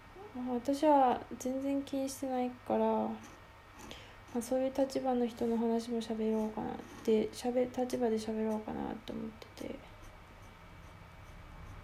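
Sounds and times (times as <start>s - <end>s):
low hum: 0.0s - 11.8s
speech: 0.4s - 9.9s
dip pen nib scratching on paper: 3.1s - 11.8s.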